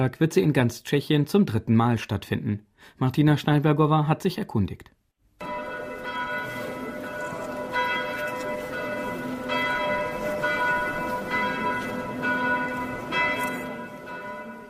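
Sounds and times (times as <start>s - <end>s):
speech: 0.0s - 5.0s
church bells ringing: 5.4s - 14.6s.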